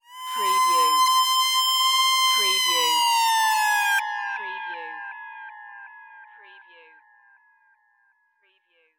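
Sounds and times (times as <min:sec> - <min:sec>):
synth scream: 0:00.0 - 0:04.9.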